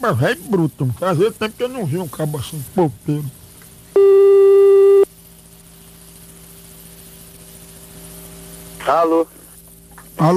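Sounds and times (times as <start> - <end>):
speech: 0.0 - 3.4, 8.9 - 9.4, 10.2 - 10.3
telephone call ringing tone: 4.0 - 5.0.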